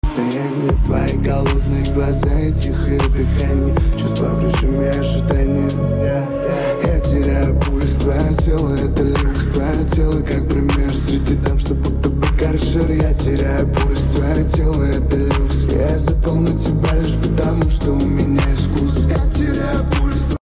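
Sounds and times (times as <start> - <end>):
light music: 0.0 - 20.4.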